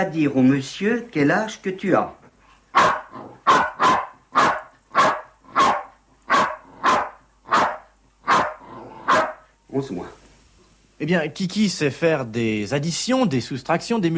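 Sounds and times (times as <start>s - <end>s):
speech: 0.0s - 2.2s, 2.8s - 3.7s, 9.8s - 10.2s, 11.0s - 14.1s
dog barking loud and sharp: 2.7s - 9.5s.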